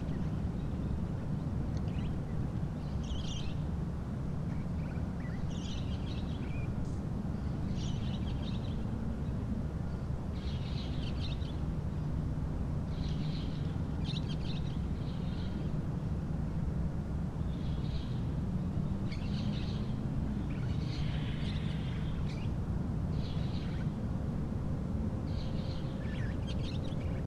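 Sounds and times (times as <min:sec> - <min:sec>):
birds: 0:00.0 - 0:03.8, 0:04.5 - 0:12.2, 0:12.8 - 0:15.8, 0:17.4 - 0:24.4, 0:25.1 - 0:27.2
city noise: 0:00.0 - 0:27.2.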